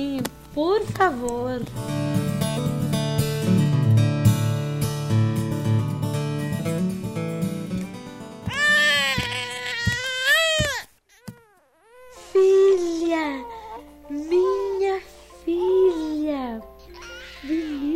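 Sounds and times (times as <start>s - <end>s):
soft music: 0.0s - 17.9s
speech: 0.6s - 2.2s
baby girl crying and whimpering: 8.5s - 17.9s.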